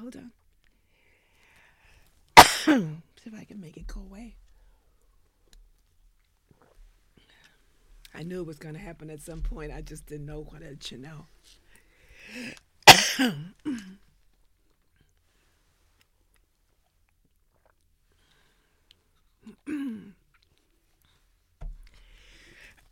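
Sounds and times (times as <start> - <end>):
speech: 0.1 - 0.4, 2.7 - 4.4, 8.1 - 11.6, 12.3 - 14.0
harsh coughing into a shirt: 2.4 - 3.0, 12.9 - 14.0, 19.6 - 20.2.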